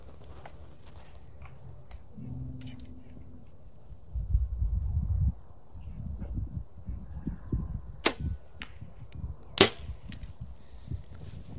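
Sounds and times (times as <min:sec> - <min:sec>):
low rumbling background: 0:01.2 - 0:07.0
arrow shot from a bow: 0:08.0 - 0:08.7, 0:09.6 - 0:10.0.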